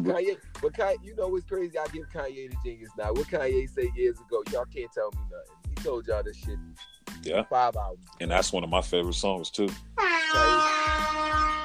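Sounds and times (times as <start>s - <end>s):
speech: 0.0s - 11.0s
loud brassy air horn blaring: 10.0s - 11.6s.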